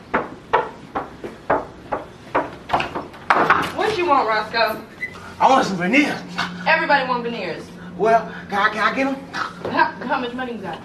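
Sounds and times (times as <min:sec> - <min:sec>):
sharp hollow thumps on a door: 0:00.0 - 0:04.1
speech: 0:04.0 - 0:10.8.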